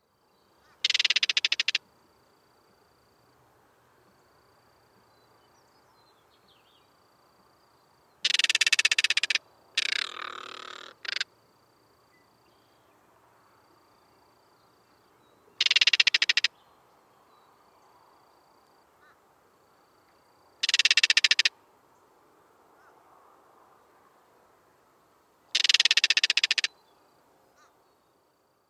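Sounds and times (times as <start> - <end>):
crested caracara: 0.6 - 1.9, 8.2 - 11.3, 15.5 - 16.6, 20.6 - 21.6, 25.5 - 26.8.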